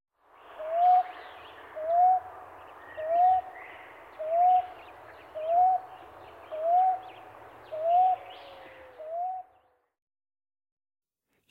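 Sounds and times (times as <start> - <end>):
common ground dove cooing: 0.6 - 9.8.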